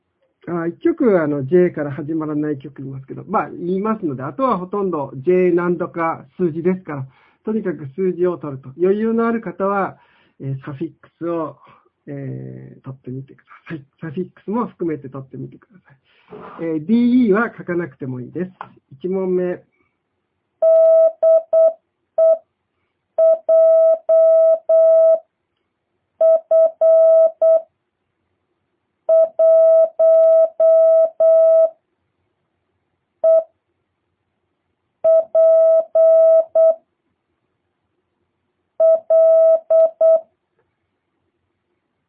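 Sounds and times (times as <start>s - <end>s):
speech: 0.5s - 19.7s
single-pitched tone keyed in Morse code sending a call sign: 20.6s - 22.4s, 23.2s - 25.2s, 26.2s - 27.6s, 29.1s - 31.8s, 33.2s - 33.5s, 35.0s - 36.8s, 38.8s - 40.2s.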